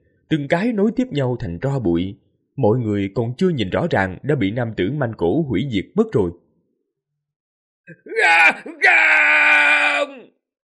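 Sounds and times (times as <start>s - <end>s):
speech: 0.3s - 6.4s, 7.9s - 10.4s
people screaming in despair: 7.9s - 10.3s.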